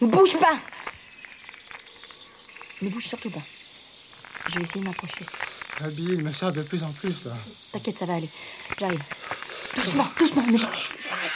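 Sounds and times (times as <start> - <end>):
speech: 0.0 - 0.9, 2.8 - 3.6, 4.5 - 11.3
fer-de-lance viper hissing: 0.0 - 11.3
faint scratchy ticks and chirping flecks: 0.4 - 11.2.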